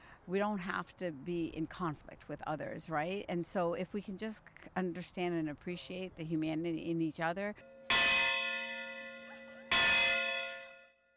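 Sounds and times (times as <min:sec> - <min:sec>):
speech: 0:00.2 - 0:07.7
large ceremonial bell tolling at the West Virginia state capitol: 0:07.6 - 0:11.1.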